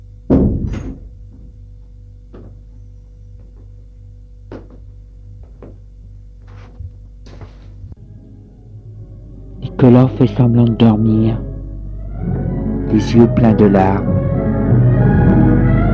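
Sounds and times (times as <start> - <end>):
low steady hum: 0.0 - 15.9
door shutting with a dull heavy thud: 0.3 - 1.6
speech: 9.8 - 11.5, 12.9 - 14.2.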